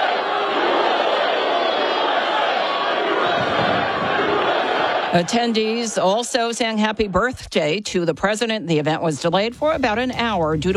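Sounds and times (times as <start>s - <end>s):
large crowd roaring and chanting in unison at fighting championship bouts: 0.0s - 7.3s
speech: 5.1s - 10.7s.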